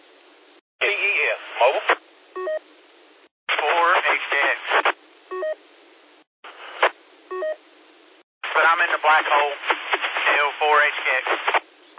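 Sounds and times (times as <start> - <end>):
band-limited CB radio static hissing: 0.8 - 2.0, 3.5 - 5.0, 6.5 - 7.0, 8.4 - 11.7.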